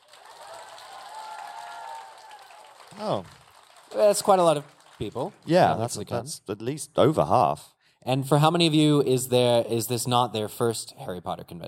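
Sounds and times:
cheers and whoops from a fan convention audience: 0.0s - 3.3s
large audience at a fan convention clapping: 0.0s - 6.2s
speech: 2.9s - 11.6s.

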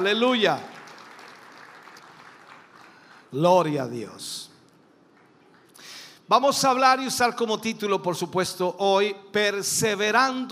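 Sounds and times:
speech: 0.0s - 0.7s, 3.3s - 4.5s, 6.3s - 10.5s
audience applauding: 0.0s - 3.4s.

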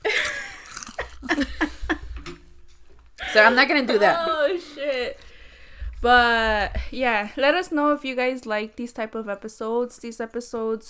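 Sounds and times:
laughter: 0.0s - 2.1s, 3.2s - 5.2s
crunchy munching and chewing of food: 0.2s - 1.4s
speech: 1.4s - 1.6s, 3.4s - 5.2s, 6.0s - 10.8s
faint breathy noise: 4.7s - 6.0s.

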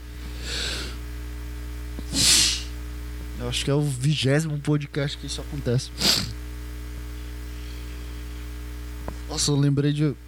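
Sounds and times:
person sneezing: 2.0s - 2.8s, 6.0s - 6.4s
speech: 3.4s - 6.4s, 9.4s - 10.2s.

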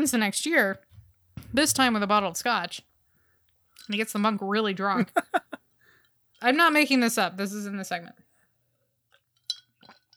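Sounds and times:
speech: 0.0s - 2.9s, 3.8s - 5.6s, 6.4s - 8.2s
laughter: 5.0s - 5.6s
single soft clink of glass: 9.5s - 9.7s.

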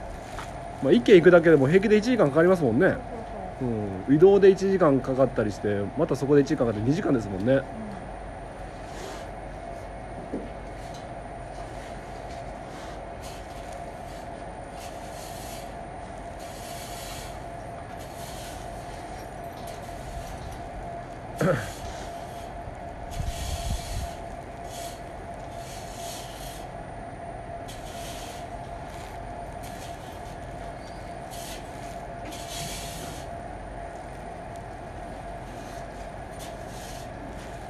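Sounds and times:
steady mechanical hum: 0.0s - 37.6s
speech: 0.8s - 7.9s
rake scraping up leftover feed over a rough surface: 11.6s - 15.8s, 16.4s - 20.6s, 21.5s - 26.7s, 27.6s - 33.3s, 35.0s - 37.6s.

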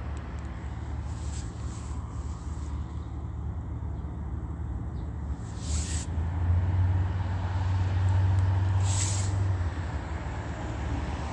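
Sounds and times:
city bus heavy engine low drone: 0.0s - 11.3s
steady traffic rumble at a busy intersection: 0.0s - 11.3s
brief hissing bursts: 5.5s - 6.1s, 8.8s - 9.4s.

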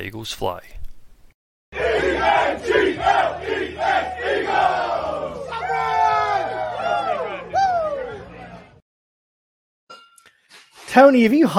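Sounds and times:
speech: 0.0s - 0.8s, 10.9s - 11.5s
large football stadium crowd roaring and chanting: 1.8s - 8.8s.

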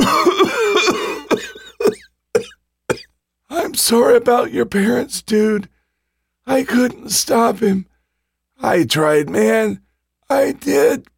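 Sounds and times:
harsh hacking coughing: 0.0s - 3.2s
speech: 3.9s - 5.7s, 6.4s - 7.9s, 8.6s - 11.1s.

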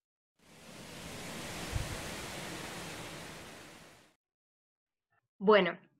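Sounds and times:
wind moving through trees across an open field: 0.4s - 4.2s
speech: 5.4s - 5.9s.

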